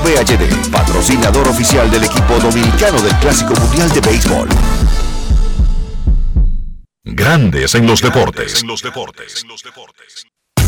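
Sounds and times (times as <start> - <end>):
speech: 0.2 - 5.0, 7.1 - 10.6
heartbeat sound effect: 3.6 - 6.9.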